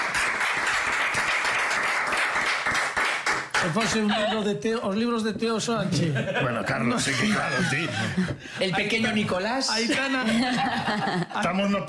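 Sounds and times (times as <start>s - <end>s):
crowd applauding: 0.0s - 4.1s
speech: 3.6s - 11.8s
laughter: 3.7s - 4.6s, 5.8s - 11.5s.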